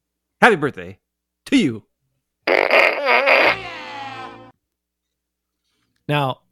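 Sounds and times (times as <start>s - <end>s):
speech: 0.4s - 1.9s, 6.1s - 6.4s
toy fart gun synthetic fart noise: 2.5s - 4.2s.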